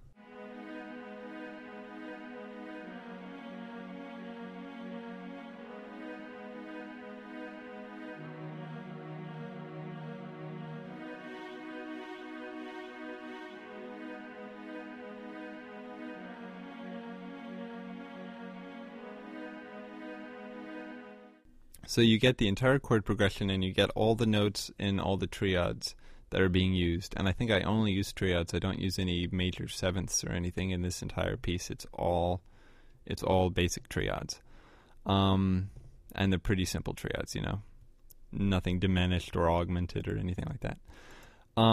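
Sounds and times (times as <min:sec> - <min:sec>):
cello playing triad arpeggios: 0:00.1 - 0:21.4
speech: 0:21.9 - 0:34.4, 0:35.0 - 0:37.7, 0:38.3 - 0:41.7.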